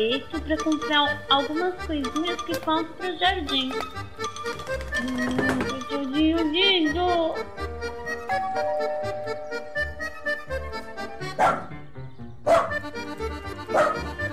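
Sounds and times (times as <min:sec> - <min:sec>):
speech: 0:00.0 - 0:07.7
tonal music: 0:00.0 - 0:14.3
dog barking: 0:11.4 - 0:11.7, 0:12.4 - 0:12.8, 0:13.7 - 0:14.1.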